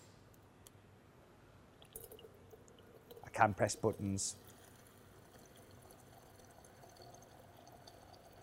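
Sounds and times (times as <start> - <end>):
water pouring into a coffee cup: 1.8 - 8.4
speech: 3.4 - 4.5.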